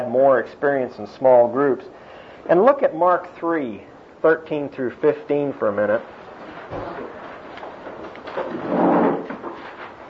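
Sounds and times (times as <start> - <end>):
speech: 0.1 - 7.2
chairs being carried in and shifted around, scraping and clattering: 6.0 - 10.0.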